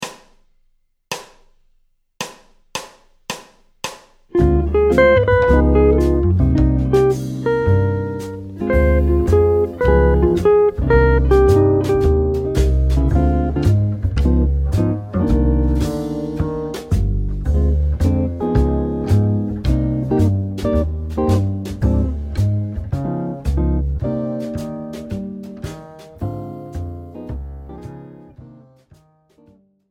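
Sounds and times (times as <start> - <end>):
jazz guitar playing triads with tritone substitution: 4.3 - 29.2.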